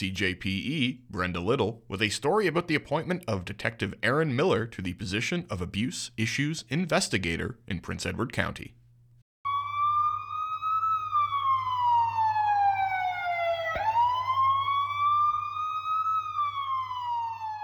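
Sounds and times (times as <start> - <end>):
speech: 0.0 - 8.8
Ontario Provincial Police car siren racing to an emergency: 9.5 - 17.6.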